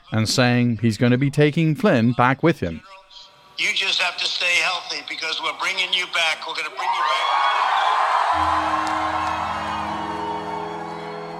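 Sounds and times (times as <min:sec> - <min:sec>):
speech: 0:00.1 - 0:03.0, 0:03.6 - 0:09.3
large crowd roaring and cheering loudly: 0:06.8 - 0:11.3.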